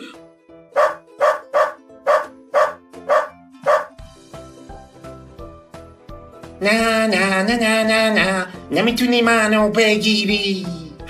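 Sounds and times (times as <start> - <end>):
soft music: 0.0 - 11.0
dog barking: 0.8 - 4.0
speech: 6.6 - 10.8.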